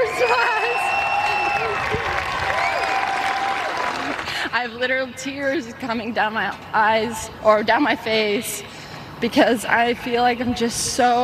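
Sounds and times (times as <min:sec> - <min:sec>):
crowd clapping: 0:00.0 - 0:04.4
high whistle-like calls: 0:00.1 - 0:01.8
speech: 0:04.6 - 0:11.2.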